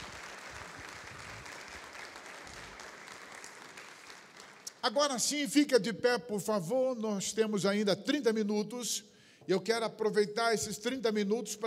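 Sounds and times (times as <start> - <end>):
church congregation applauding during a Methodist worship service: 0.0 - 5.6
speech: 4.8 - 11.6.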